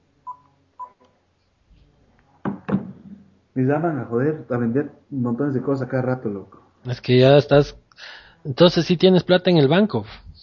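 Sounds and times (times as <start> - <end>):
short electronic phone beeps: 0.2 - 1.0
speech: 3.6 - 10.4.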